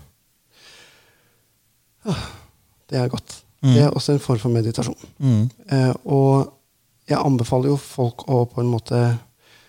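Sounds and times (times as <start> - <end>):
slow deep breath drawn in through the nose: 0.5 - 1.5
speech: 2.0 - 9.3.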